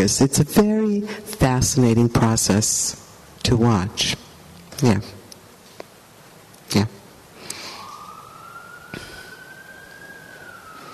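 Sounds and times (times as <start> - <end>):
speech: 0.0 - 4.2, 4.8 - 5.2, 6.7 - 7.0
siren of a passing emergency vehicle outside: 7.5 - 10.9.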